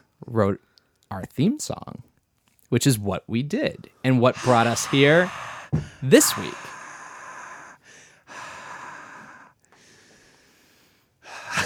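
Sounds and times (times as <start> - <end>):
speech: 0.2 - 2.1, 2.7 - 6.7
heavy loud rasping breathing: 3.8 - 11.6.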